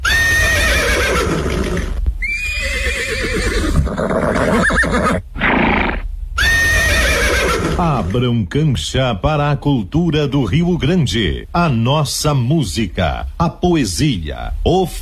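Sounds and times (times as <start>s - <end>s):
herd of young horses colts whinnying: 0.0s - 8.2s
speech: 8.1s - 15.0s.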